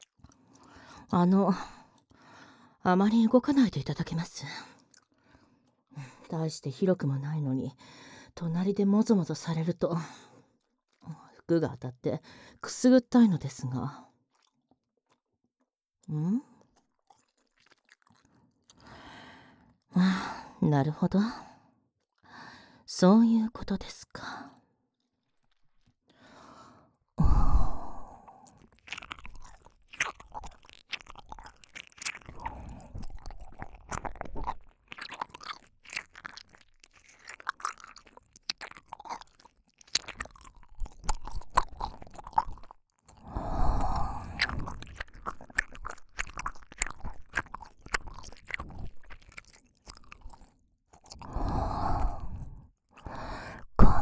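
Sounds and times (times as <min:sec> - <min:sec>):
speech: 0:01.1 - 0:01.8, 0:02.8 - 0:04.7, 0:06.3 - 0:10.3, 0:11.0 - 0:14.1, 0:16.1 - 0:16.5, 0:19.9 - 0:21.5, 0:22.9 - 0:24.5
crunchy chewing: 0:14.3 - 0:15.3, 0:16.6 - 0:18.8, 0:28.3 - 0:53.7
heavy breathy sighs and exhales: 0:26.2 - 0:28.5, 0:43.2 - 0:44.6, 0:51.2 - 0:54.0.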